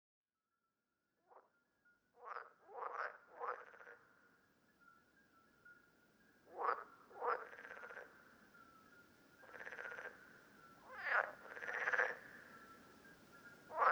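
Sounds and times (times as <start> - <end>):
parsley frogs croaking with creaky ratchet-like calls in Lerouville, Lorraine, France: 2.2 - 5.0, 5.6 - 13.9.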